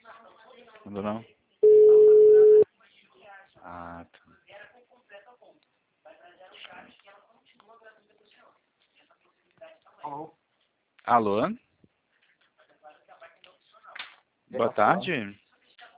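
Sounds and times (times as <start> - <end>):
speech: 0.9 - 1.4, 11.1 - 11.6, 14.5 - 15.4
telephone call ringing tone beep: 1.6 - 2.6.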